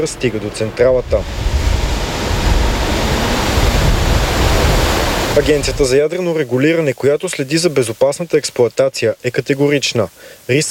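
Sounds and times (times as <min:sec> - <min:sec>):
speech: 0:00.0 - 0:01.6, 0:05.4 - 0:10.7
water rushing through canal at shore pumping station: 0:00.0 - 0:10.7.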